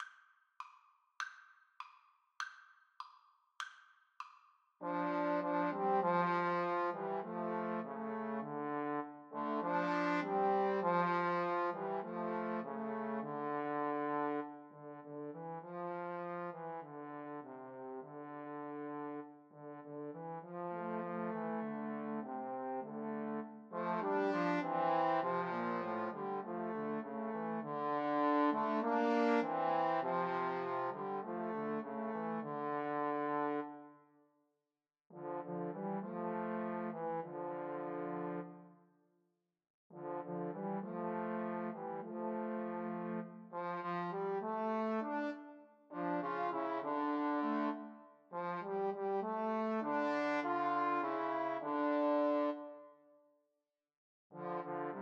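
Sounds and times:
trombone trio: 0:04.8 - 0:15.4, 0:16.1 - 0:33.7, 0:35.2 - 0:38.5, 0:40.0 - 0:52.5, 0:54.4 - 0:55.0.

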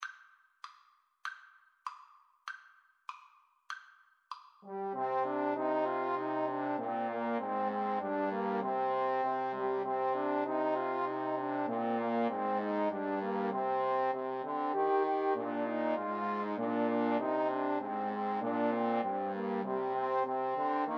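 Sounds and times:
trombone trio playing a carol: 0:04.7 - 0:20.9.

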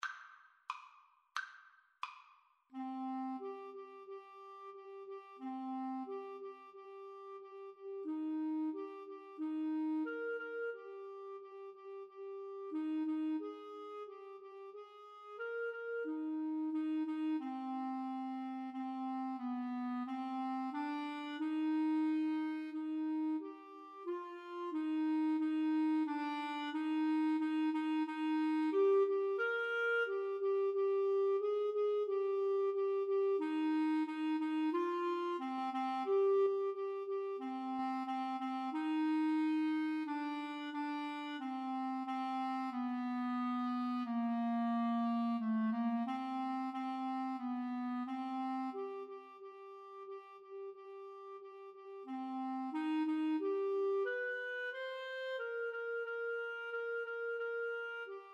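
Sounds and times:
clarinet duet playing a pavane: 0:02.7 - 0:58.3.

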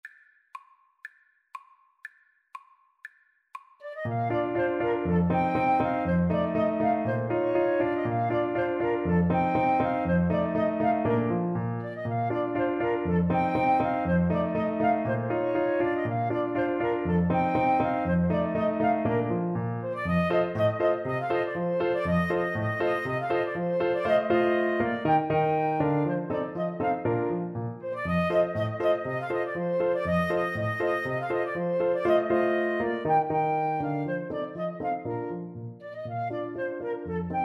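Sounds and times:
ecossaise dance played on clarinet: 0:03.8 - 0:37.4.

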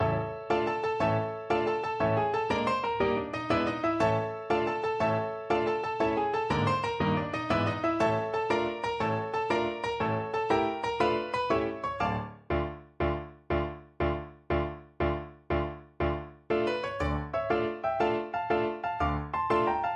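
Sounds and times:
tarantella piano piece: 0:00.0 - 0:19.9.

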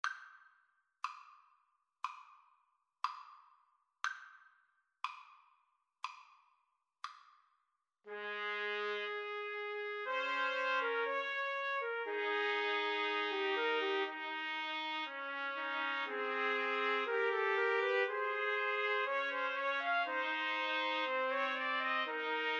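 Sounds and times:
trumpet trio playing a romance: 0:08.1 - 0:22.5.

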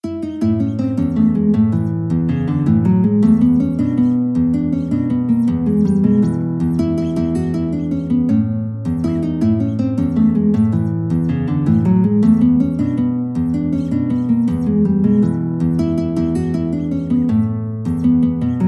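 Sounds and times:
guitar playing a Mexican folk dance tune: 0:00.0 - 0:18.6.

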